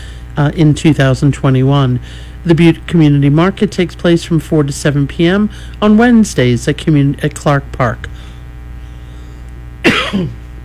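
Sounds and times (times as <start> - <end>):
hum: 0.0 - 10.6
speech: 0.4 - 8.2, 10.1 - 10.4
radio news reader coughing: 9.8 - 10.5.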